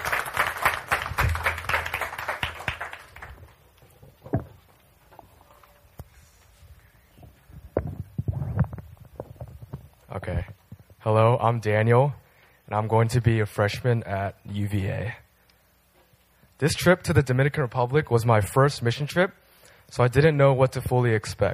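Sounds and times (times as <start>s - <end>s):
audience applause: 0.0s - 3.6s
faint room noise: 0.0s - 21.5s
speech: 11.1s - 15.2s, 16.6s - 21.5s.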